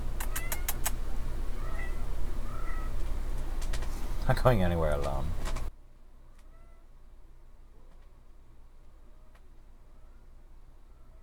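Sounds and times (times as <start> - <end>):
cat meowing: 0.0 - 3.6
outdoor noise: 0.0 - 11.2
speech: 4.3 - 5.4.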